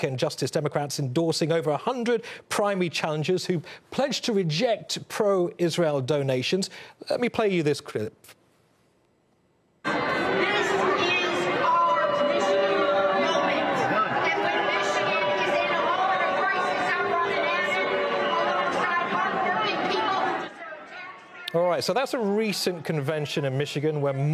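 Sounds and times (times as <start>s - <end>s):
speech: 0.0s - 8.4s, 21.8s - 24.3s
large convention crowd loudly booing: 9.9s - 21.5s.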